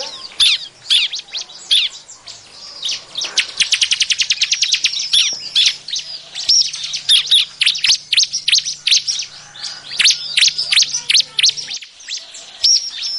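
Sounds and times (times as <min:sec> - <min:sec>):
bar-winged prinia chattering with high chirps: 0:00.0 - 0:13.1.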